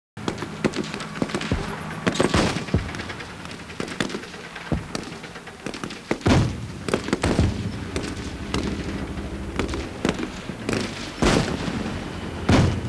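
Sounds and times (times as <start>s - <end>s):
battle ambience: 0.2s - 12.8s.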